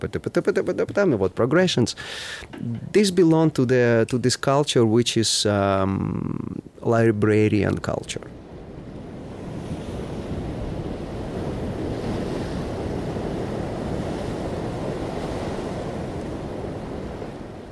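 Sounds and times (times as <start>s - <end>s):
speech: 0.0s - 8.4s
ocean waves breaking on a shore: 8.3s - 17.6s.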